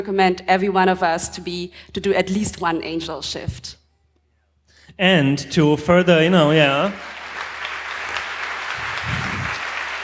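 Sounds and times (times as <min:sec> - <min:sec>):
speech: 0:00.0 - 0:03.8, 0:05.0 - 0:07.2
audience applause at a talk: 0:06.0 - 0:10.0.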